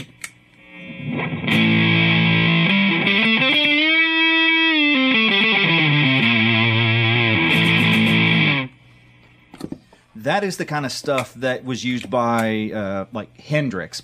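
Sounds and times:
guitar played through a hard-clipping fuzz pedal: 0.6s - 8.8s
speech: 10.3s - 14.0s.

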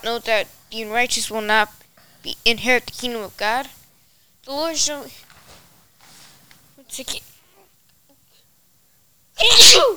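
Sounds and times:
speech: 0.0s - 3.8s, 4.4s - 5.2s, 6.9s - 7.3s, 9.4s - 9.9s
loud sneeze: 9.4s - 9.9s.

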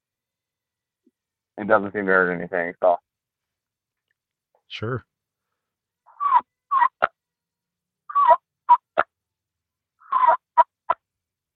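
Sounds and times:
speech: 1.6s - 3.1s, 4.7s - 5.1s
turkey call producing rolling purrs and sharp clucks: 6.1s - 7.2s, 8.1s - 9.2s, 10.0s - 11.1s.

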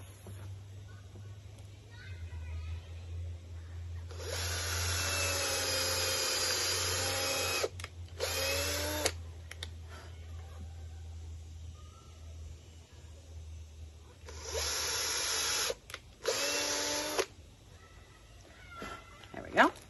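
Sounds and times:
low hum: 0.0s - 19.8s
power drill boring a hole through wood to secure antenna copper wire: 4.1s - 9.2s, 14.3s - 17.3s.

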